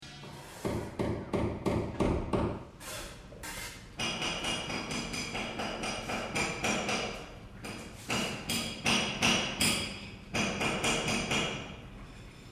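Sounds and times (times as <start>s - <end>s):
hammering inside a building: 0.6s - 2.6s, 4.0s - 11.7s.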